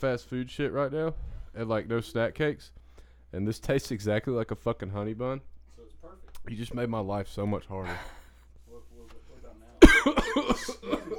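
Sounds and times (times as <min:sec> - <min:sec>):
speech: 0:00.0 - 0:05.5, 0:06.1 - 0:08.2, 0:10.0 - 0:11.1
person coughing: 0:09.8 - 0:11.1.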